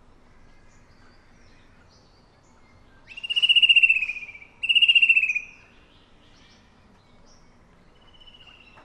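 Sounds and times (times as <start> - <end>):
fan-tailed berrypecker buzzy pulsed high calls in Papua New Guinea: 3.0 - 5.9.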